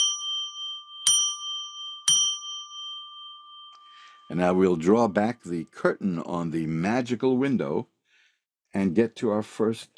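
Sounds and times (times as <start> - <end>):
clear resonant bell ringing: 0.0 - 4.8
speech: 4.3 - 7.9, 8.7 - 9.9.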